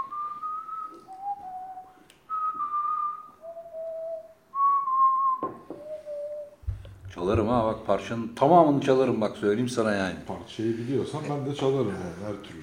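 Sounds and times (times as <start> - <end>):
person whistling a simple slow tune: 0.0 - 6.6
speech: 7.2 - 12.6.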